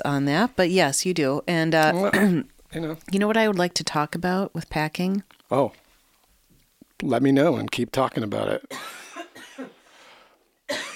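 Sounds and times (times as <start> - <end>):
speech: 0.0 - 5.8, 7.0 - 9.0
fit of harsh coughs: 2.0 - 2.5, 8.7 - 9.8, 10.7 - 10.9.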